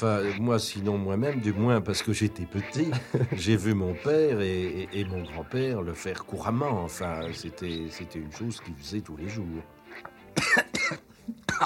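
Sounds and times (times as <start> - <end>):
speech: 0.0 - 11.6
laughter: 1.2 - 4.2
person coughing after swallowing the wrong way: 10.4 - 11.6.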